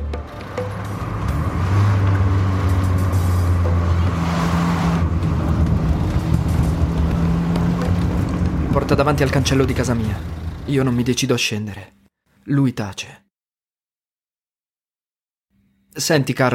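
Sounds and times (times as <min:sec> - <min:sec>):
car engine humming while shifting into gear and driving off: 0:00.0 - 0:11.2
speech: 0:08.9 - 0:13.2, 0:16.0 - 0:16.5.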